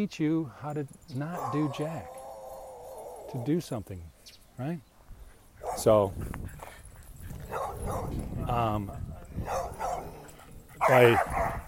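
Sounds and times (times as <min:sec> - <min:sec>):
speech: 0:00.0 - 0:02.2, 0:03.3 - 0:04.9, 0:05.7 - 0:06.6, 0:07.7 - 0:09.8, 0:10.9 - 0:11.6
dogs barking outdoors: 0:01.2 - 0:03.6, 0:05.6 - 0:11.6.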